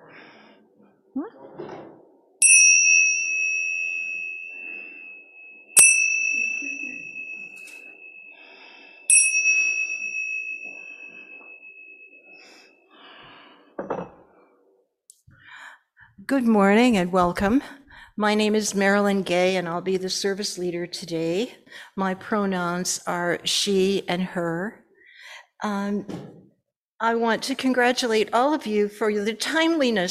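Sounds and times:
speech: 1.2 - 1.6, 16.3 - 24.8, 25.6 - 26.4, 27.0 - 30.0
chime being struck: 2.4 - 12.8.

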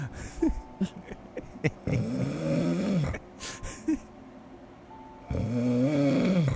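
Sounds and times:
raspy snoring with snorts and clicks: 1.8 - 3.6, 5.3 - 6.5.

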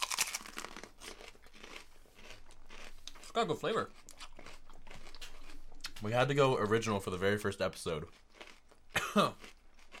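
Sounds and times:
crunching bites of jalapeno peppers: 0.0 - 6.3, 7.7 - 9.9
speech: 3.4 - 4.0, 6.0 - 8.2, 9.2 - 9.5.

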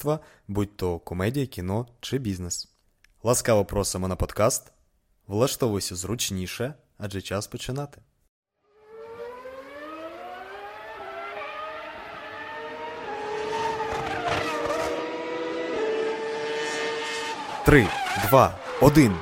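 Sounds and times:
speech: 0.0 - 8.1, 17.7 - 19.2
drifting car engine roar: 8.6 - 19.2
tire squeal of drifting car: 9.0 - 19.2.

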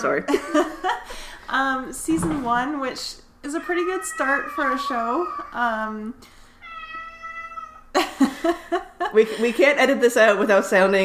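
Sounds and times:
speech: 0.0 - 6.4, 8.0 - 11.0
cat meowing, screeching and yowling: 3.5 - 5.8, 6.6 - 7.9.

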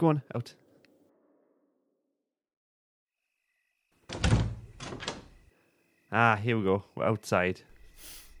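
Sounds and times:
speech: 0.0 - 0.6, 6.1 - 8.2
heavy wooden door being opened with a creaking scrape: 4.0 - 5.5.

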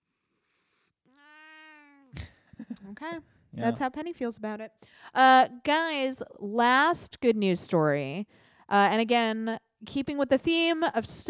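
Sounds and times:
cat meowing: 1.1 - 2.1
speech: 2.9 - 11.2.

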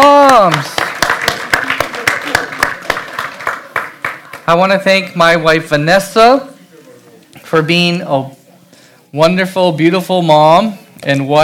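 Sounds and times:
church audience applauding: 0.0 - 4.6
faint murmur of voices: 0.0 - 11.0
speech: 4.5 - 6.5, 7.4 - 8.4, 9.1 - 11.4.

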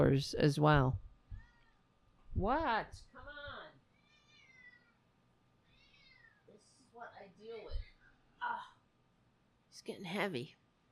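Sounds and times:
speech: 0.0 - 1.0, 2.4 - 3.4, 9.8 - 10.6
cat meowing: 1.3 - 1.8, 3.9 - 5.0, 5.7 - 6.5.

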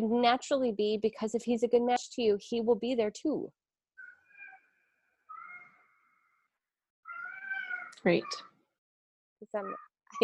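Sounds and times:
speech: 0.0 - 3.6, 8.0 - 8.5, 9.4 - 10.2
cat meowing in long drawn-out tonal calls: 7.1 - 8.5.

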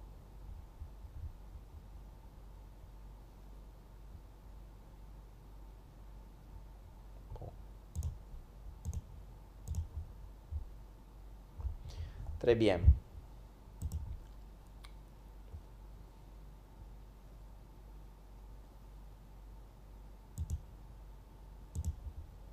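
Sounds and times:
steady low hum and hiss: 0.0 - 22.5
computer mouse clicking: 7.4 - 8.2, 8.8 - 10.0, 13.8 - 15.0, 20.4 - 20.7, 21.7 - 22.1
speech: 12.4 - 13.0.

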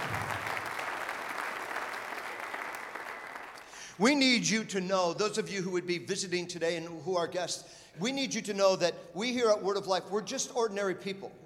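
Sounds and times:
large congregation applauding: 0.0 - 3.8
speech: 4.0 - 11.4.

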